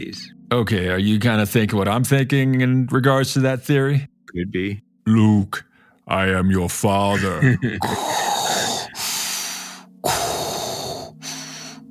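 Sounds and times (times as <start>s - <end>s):
speech: 0.0s - 8.3s
laughter: 7.1s - 8.0s
voice imitating heavy mechanical respirator breathing into microphone: 7.8s - 11.8s.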